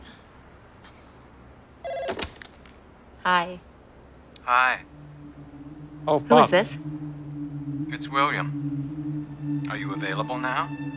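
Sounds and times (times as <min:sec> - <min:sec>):
telephone ringing: 0:01.8 - 0:02.3
speech: 0:03.2 - 0:03.7, 0:04.5 - 0:05.0, 0:06.0 - 0:07.1, 0:07.9 - 0:08.9, 0:09.7 - 0:10.9.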